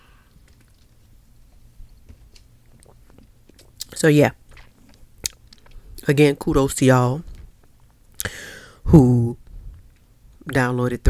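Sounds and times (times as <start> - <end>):
low hum: 0.0 - 11.0
person sipping a drink: 2.6 - 6.0
wet mouth clicks: 2.7 - 5.8
speech: 4.0 - 4.4, 6.1 - 7.3, 8.9 - 9.4, 10.5 - 11.0.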